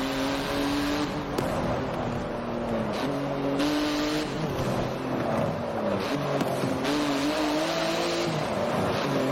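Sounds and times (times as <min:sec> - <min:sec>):
car engines roaring as cars drive hard: 0:00.0 - 0:09.3
vehicles colliding with crunching bursts: 0:00.8 - 0:06.9.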